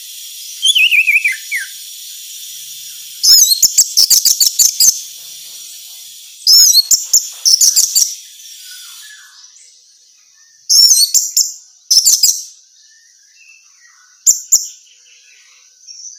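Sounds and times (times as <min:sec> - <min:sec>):
female orange-headed thrush chirping: 0:00.0 - 0:09.4
faint high hiss: 0:00.0 - 0:16.1.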